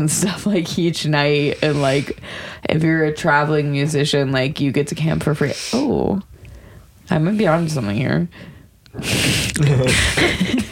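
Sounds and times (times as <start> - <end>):
speech: 0.0 - 6.3, 7.1 - 10.6
heavy breathing close to the microphone: 1.4 - 2.7, 6.4 - 10.2.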